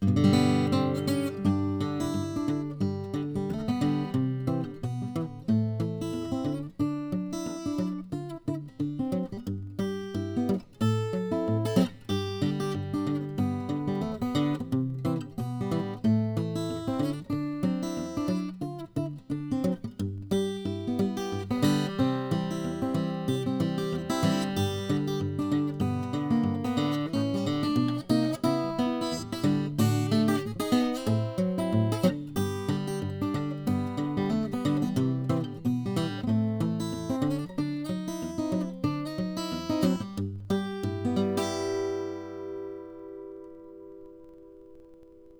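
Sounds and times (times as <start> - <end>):
Martin 00-18 acoustic guitar: 0.0 - 45.3.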